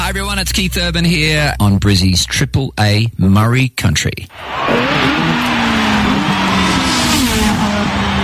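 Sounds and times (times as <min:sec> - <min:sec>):
speech: 0:00.1 - 0:05.3
Formula One race car engine whine: 0:04.3 - 0:08.2.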